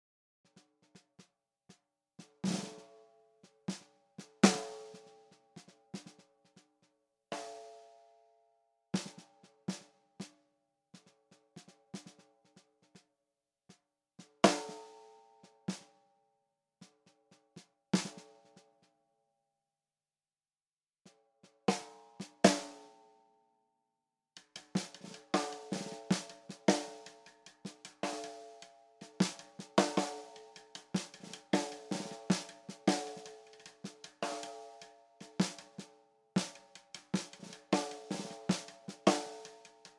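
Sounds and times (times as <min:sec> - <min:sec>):
snare drum: 0:00.5 - 0:02.9, 0:03.7 - 0:06.6, 0:09.0 - 0:10.4, 0:11.0 - 0:13.0, 0:14.2 - 0:14.9, 0:18.0 - 0:18.7, 0:21.5 - 0:22.8, 0:24.4 - 0:39.9.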